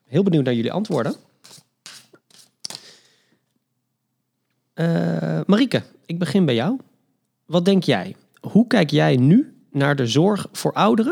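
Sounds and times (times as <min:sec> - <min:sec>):
speech: 0:00.1 - 0:01.6, 0:04.8 - 0:06.9, 0:07.5 - 0:11.1
deck of cards being shuffled in papery riffling bursts: 0:00.7 - 0:02.9.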